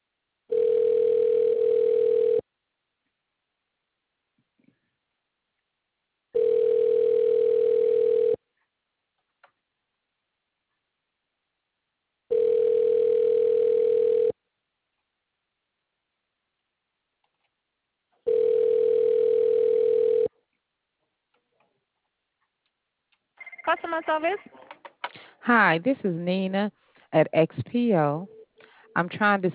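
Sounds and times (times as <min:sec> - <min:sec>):
telephone ringback tone while a call is being transferred: 0:00.5 - 0:02.4, 0:06.4 - 0:08.4, 0:12.3 - 0:14.3, 0:18.3 - 0:20.3
speech: 0:23.7 - 0:24.6, 0:25.5 - 0:28.4, 0:29.0 - 0:29.5.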